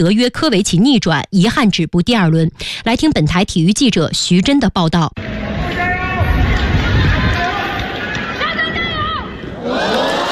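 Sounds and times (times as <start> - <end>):
speech: 0.0 - 5.8
large tennis stadium crowd cheering at the National Tennis Center: 5.2 - 10.3.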